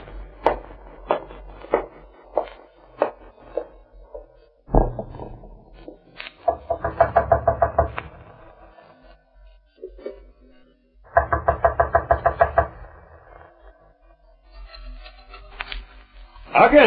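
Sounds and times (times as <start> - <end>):
knocking on a locked wooden door: 4.7 - 8.4, 11.1 - 13.0.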